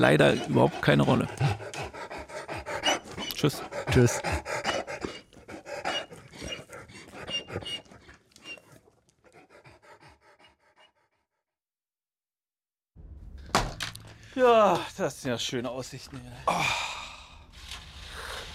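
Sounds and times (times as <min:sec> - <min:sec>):
speech: 0:00.0 - 0:01.8, 0:03.4 - 0:04.5, 0:14.4 - 0:16.8
bulldog snorting and panting: 0:00.0 - 0:11.3.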